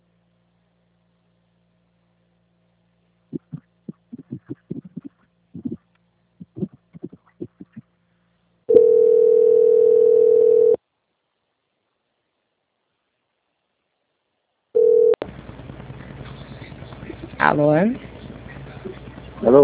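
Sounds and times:
telephone line tone during a call transfer: 8.7s - 10.8s, 14.8s - 15.3s
speech: 17.6s - 18.1s.

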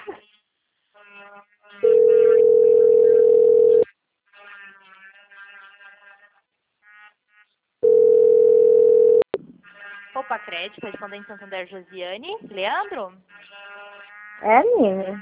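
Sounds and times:
telephone calling tone beeps: 1.8s - 3.8s, 7.8s - 9.3s
speech: 10.4s - 13.6s, 14.4s - 15.2s.

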